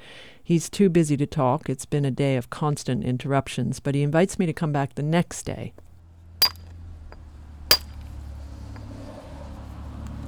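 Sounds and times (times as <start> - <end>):
speech: 0.5 - 5.8
stonemason striking a hammer on a chisel against stone: 6.4 - 6.7, 7.7 - 8.0.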